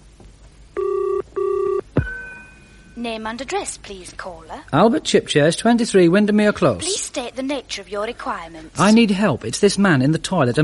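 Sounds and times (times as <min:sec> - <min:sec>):
telephone ringing on the line after dialing a help number: 0:00.8 - 0:01.9
speech: 0:03.0 - 0:10.6.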